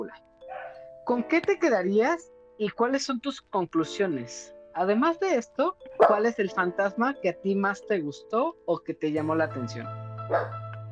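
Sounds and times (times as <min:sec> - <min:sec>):
speech: 0:00.1 - 0:00.3, 0:01.1 - 0:10.6
dog barking: 0:00.5 - 0:00.8, 0:06.0 - 0:06.3, 0:10.3 - 0:10.6
faint dog yip: 0:00.5 - 0:00.8, 0:06.0 - 0:06.2, 0:10.3 - 0:10.6.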